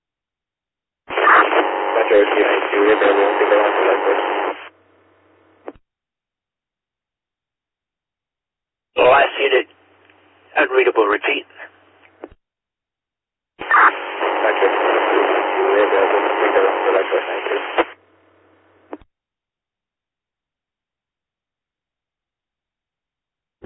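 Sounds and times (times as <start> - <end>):
harsh crackling radio static: 1.1 - 4.7, 9.0 - 9.7, 10.5 - 11.8, 13.6 - 18.0
speech: 2.1 - 4.5, 10.6 - 11.5.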